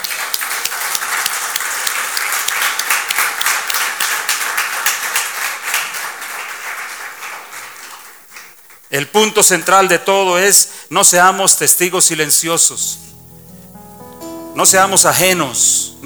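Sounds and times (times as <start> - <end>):
audience applause: 0.0 - 10.0
speech: 8.9 - 13.0, 14.6 - 16.0.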